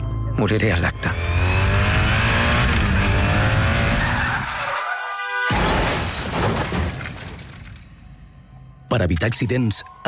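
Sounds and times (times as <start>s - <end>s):
speech: 0.4s - 1.2s, 9.0s - 10.0s
engine noise of motorcycle and cars: 1.0s - 4.5s
motorcycle tire squeal while skidding: 3.4s - 5.7s
motorcycle crashing among cars: 5.5s - 7.9s
scattering debris: 5.5s - 8.0s.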